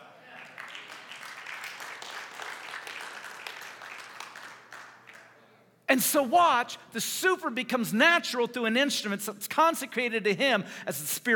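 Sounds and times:
large crowd applauding: 0.2 - 5.3
speech: 5.9 - 11.3.

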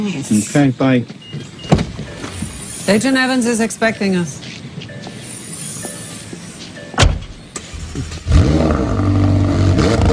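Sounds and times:
speech: 0.0 - 1.8, 2.9 - 4.5, 8.0 - 8.2
car door shutting: 1.2 - 2.6, 6.8 - 8.3
car engine starting and revving as it drives away: 7.6 - 10.1.

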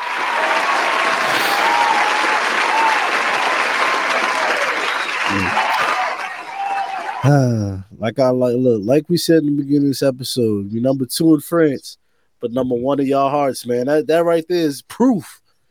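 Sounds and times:
crowd applauding with dense steady clapping: 0.0 - 7.4
speech: 7.2 - 15.4.

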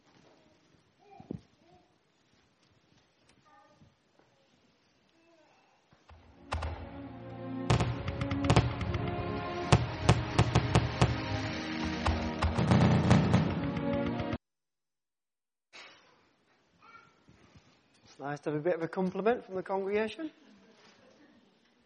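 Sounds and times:
fireworks bursting played from a DVD clip: 6.1 - 14.4
speech: 18.2 - 20.4.

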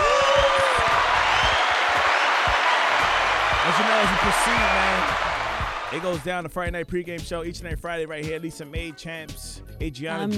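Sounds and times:
dense steady round of applause: 0.0 - 6.3
speech: 4.0 - 5.3, 5.9 - 10.3.

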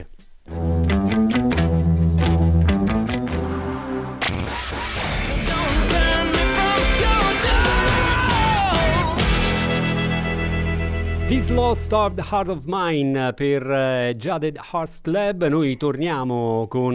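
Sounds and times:
full-band rock song with driving drums and dense guitars: 0.5 - 12.3
speech: 11.5 - 16.9.

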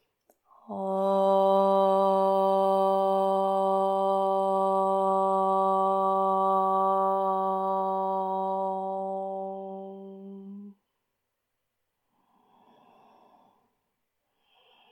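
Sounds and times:
single voice chanting om to close a yoga practice: 0.5 - 10.8.

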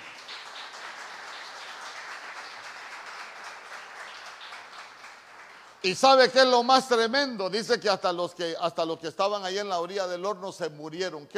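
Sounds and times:
audience applauding as an offering to God: 0.0 - 6.2
speech: 5.8 - 11.3.

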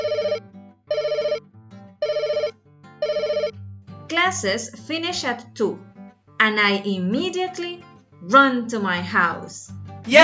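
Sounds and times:
telephone ringing with a trilling bell tone: 0.0 - 1.4, 2.0 - 3.5
speech: 4.1 - 10.2.

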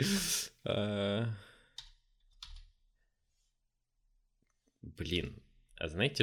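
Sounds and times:
speech: 0.0 - 1.4, 5.0 - 6.2
computer keyboard clicks typing a web search: 1.8 - 2.7.

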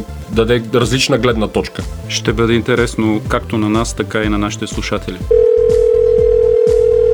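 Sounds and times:
speech: 0.0 - 5.4
telephone dial tone while calling in a guest: 5.3 - 7.1.

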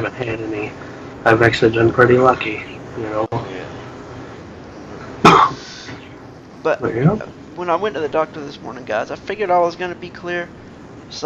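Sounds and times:
speech: 0.0 - 3.8, 6.6 - 11.2
single short cough: 5.2 - 5.6.

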